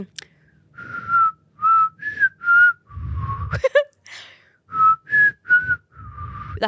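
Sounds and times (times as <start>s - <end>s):
speech: 0.0s - 0.3s
person whistling a short halting tune: 0.7s - 3.7s, 4.7s - 6.6s.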